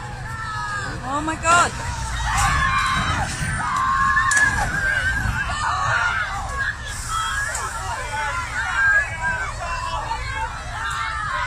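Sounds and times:
crowd of animal rights protesters shouting and chanting outdoors: 0.0 - 11.4
low rumble of traffic: 0.0 - 11.4
speech: 1.0 - 2.0.

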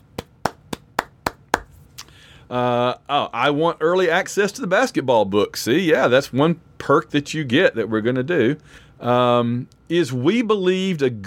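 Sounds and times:
hands clapping: 0.0 - 1.8
speech: 2.5 - 11.2.

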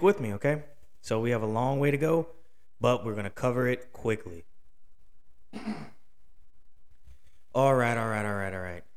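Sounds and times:
speech: 0.0 - 4.5, 5.5 - 6.0, 7.6 - 8.9
throat clearing: 5.5 - 6.0.

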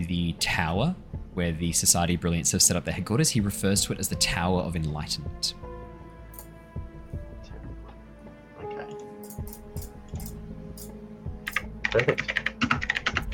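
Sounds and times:
speech: 0.0 - 5.6, 11.9 - 12.3
computer keyboard typing: 11.5 - 13.3.

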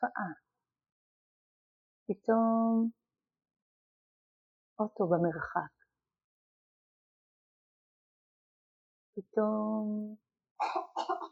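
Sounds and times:
speech: 0.0 - 0.6, 2.1 - 3.0, 4.8 - 5.8, 9.2 - 11.3
harsh coughs: 10.6 - 11.3.

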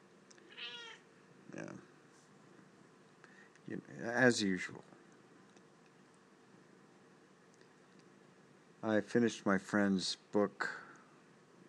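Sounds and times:
cat meowing on an ottoman: 0.5 - 1.0
cat chirpy squeaks: 0.6 - 1.0
speech: 3.7 - 5.0, 8.8 - 10.8.

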